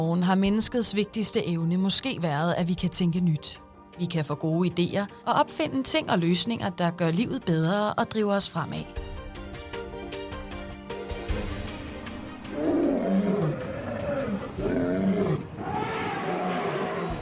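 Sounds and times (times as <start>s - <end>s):
speech: 0.0s - 9.1s
big cats roaring in a savanna: 12.5s - 17.2s.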